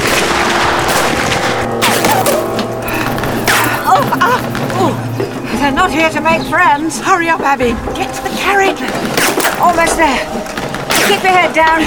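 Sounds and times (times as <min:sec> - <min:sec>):
gunfire volley from a group of outlaws: 0:00.0 - 0:04.8, 0:09.0 - 0:11.6
speech: 0:05.8 - 0:11.8.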